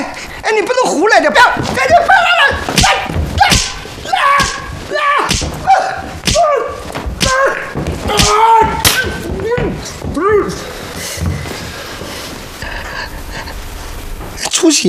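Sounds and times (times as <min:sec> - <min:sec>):
speech: 0:00.6 - 0:02.7, 0:14.6 - 0:14.8
sharp slaps across the face: 0:02.7 - 0:09.4.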